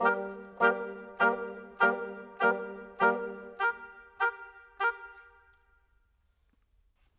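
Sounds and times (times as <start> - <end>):
bassoon: 0.0 - 5.5
oboe: 0.0 - 5.5.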